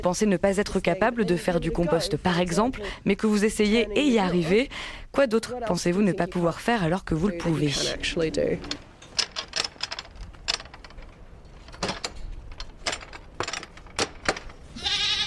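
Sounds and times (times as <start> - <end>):
speech: 0.0 - 8.9
sharp clicking and clattering noises: 8.6 - 14.7
goats bleating at a place that keeps goats and pigs: 14.7 - 15.2.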